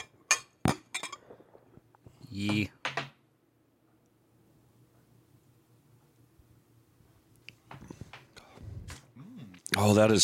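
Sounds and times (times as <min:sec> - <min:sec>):
glasses clinking in a toast: 0:00.0 - 0:01.3
speech: 0:02.3 - 0:02.8, 0:09.8 - 0:10.2.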